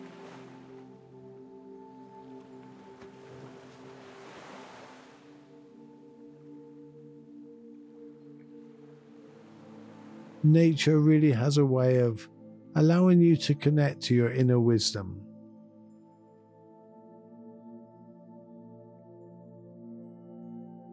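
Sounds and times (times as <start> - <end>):
ocean waves surging and washing ashore: 0.0 - 12.2
speech: 10.4 - 15.3.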